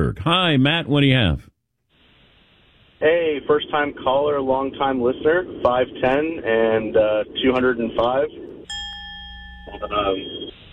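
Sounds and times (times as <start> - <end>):
speech: 0.1 - 1.5, 3.0 - 8.4, 9.7 - 10.6
bell ringing: 8.7 - 10.6.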